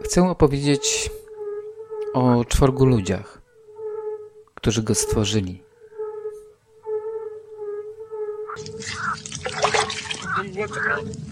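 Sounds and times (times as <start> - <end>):
speech: 0.0 - 1.2, 2.1 - 3.4, 4.6 - 5.7, 10.6 - 11.3
steady humming tone: 0.5 - 11.3
water pouring in a loud splashy gush: 8.6 - 11.3.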